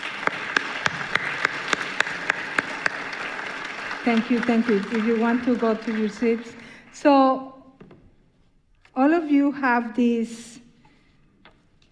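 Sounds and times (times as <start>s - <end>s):
continuous wash of crowd noise: 0.0s - 6.8s
audience clapping together in a steady even rhythm: 0.0s - 7.1s
speech: 4.0s - 7.5s, 9.0s - 10.6s.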